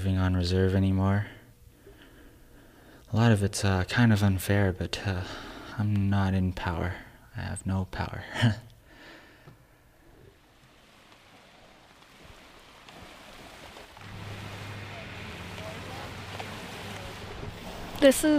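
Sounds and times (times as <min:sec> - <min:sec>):
speech: 0:00.0 - 0:01.4, 0:03.1 - 0:08.7, 0:18.0 - 0:18.3
ocean waves by a boardwalk: 0:09.8 - 0:18.3.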